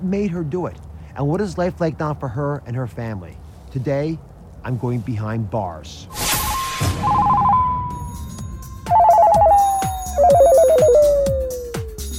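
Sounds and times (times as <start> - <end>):
speech: 0.0 - 6.2
electronic phone ringing: 7.0 - 11.2
rhythmic beat: 8.4 - 12.1.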